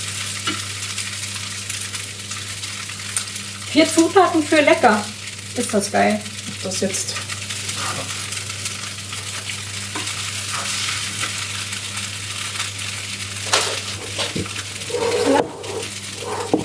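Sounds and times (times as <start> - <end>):
spätzle frying in a pan: 0.0 - 16.6
speech: 3.7 - 7.3
scraping and stirring in a pan: 7.7 - 8.2, 13.3 - 16.6.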